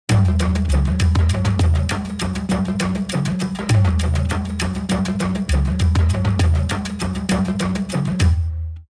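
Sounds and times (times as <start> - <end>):
African tribal music: 0.1 - 8.9.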